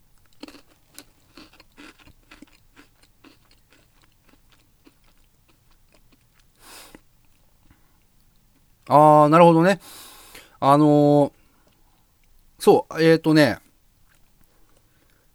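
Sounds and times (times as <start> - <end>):
crunchy chewing of a thick powder-coated snack stick: 0.1 - 8.9, 13.6 - 15.3
speech: 8.9 - 10.0, 10.6 - 11.4, 12.6 - 13.6.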